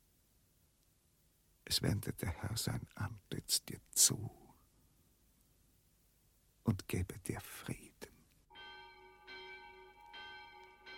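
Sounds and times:
speech: 1.7 - 4.4, 6.7 - 8.1
thin sharp clanging bell rung for a condemned prisoner: 8.5 - 10.9.

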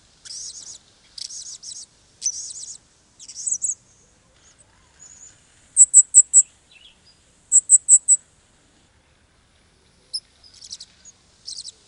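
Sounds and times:
soft steady background hiss: 0.0 - 11.8
Blue-crowned hanging parrot chattering: 5.8 - 6.4, 7.5 - 8.2.

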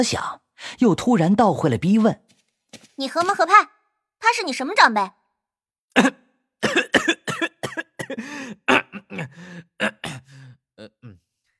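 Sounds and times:
speech: 0.0 - 2.2, 3.0 - 5.2, 6.0 - 7.2
person performing dry coughs and throat clearing: 5.9 - 11.2.

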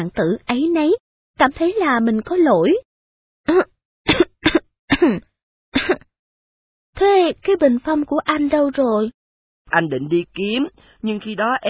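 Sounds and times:
speech: 0.0 - 4.2, 5.0 - 6.1, 7.0 - 11.6
woman giving short dry deliberate coughs: 3.5 - 6.1.

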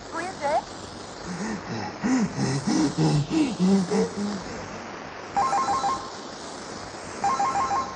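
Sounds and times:
steady hiss: 0.0 - 7.9
person speaking: 1.3 - 4.7
electronic telephone ringtone: 5.4 - 6.1, 7.2 - 7.9.

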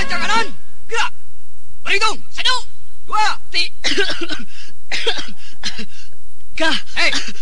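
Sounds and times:
speech: 0.1 - 1.1, 1.9 - 6.0, 6.6 - 7.3
person coughing while standing in a marching line during drill: 3.8 - 6.1, 6.7 - 7.3.

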